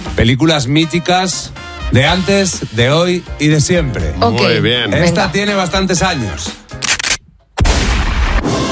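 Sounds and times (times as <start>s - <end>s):
speech: 0.2s - 6.6s
gunshot blasts from an older Spanish film: 7.6s - 8.7s.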